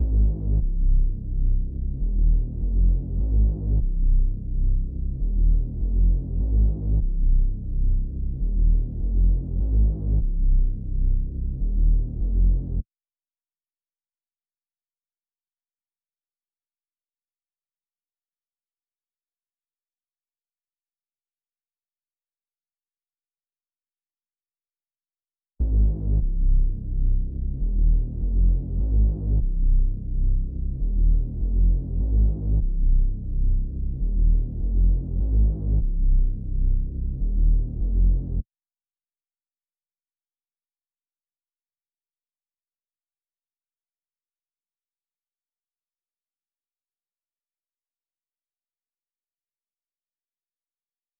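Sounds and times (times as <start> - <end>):
bass loop in C minor: 0.0 - 12.8, 25.6 - 38.4.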